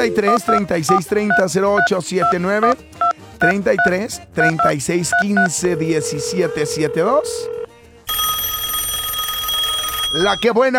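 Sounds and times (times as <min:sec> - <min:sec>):
melodic voice: 0:00.0 - 0:02.8, 0:03.4 - 0:07.7
speech: 0:00.0 - 0:07.6, 0:10.1 - 0:10.7
telephone keypad dialing tones: 0:00.0 - 0:10.5.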